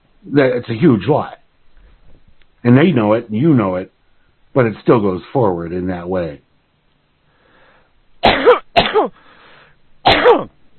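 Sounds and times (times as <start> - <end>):
speech: 0.2 - 1.4, 2.6 - 6.4, 8.8 - 9.2, 10.2 - 10.5
harsh loud coughs: 8.2 - 9.2, 10.1 - 10.5.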